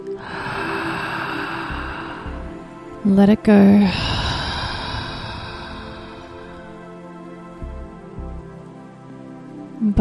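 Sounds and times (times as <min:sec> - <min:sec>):
deep continuous circular breathing: 0:00.0 - 0:03.0, 0:03.9 - 0:08.0
soft steady drone: 0:00.0 - 0:09.9
speech: 0:03.0 - 0:04.2.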